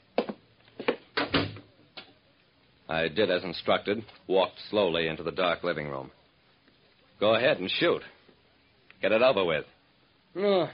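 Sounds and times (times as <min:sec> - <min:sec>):
apartment door pushed shut with wooden clunks: 0:00.9 - 0:01.7
speech: 0:02.9 - 0:06.2, 0:07.2 - 0:08.2, 0:09.0 - 0:09.7, 0:10.3 - 0:10.7.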